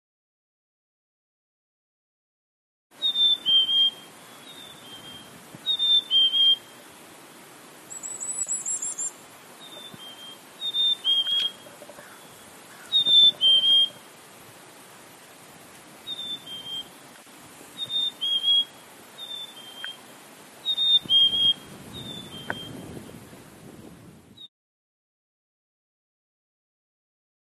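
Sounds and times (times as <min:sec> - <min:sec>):
Poecile atricapillus black-capped chickadee calling: 0:03.0 - 0:07.0, 0:07.9 - 0:14.2, 0:16.0 - 0:22.8.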